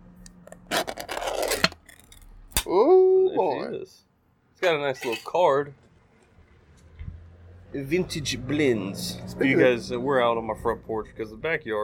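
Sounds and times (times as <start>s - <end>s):
metal tobacco tin being opened: 0.5s - 2.7s
speech: 2.7s - 5.8s, 7.7s - 11.8s.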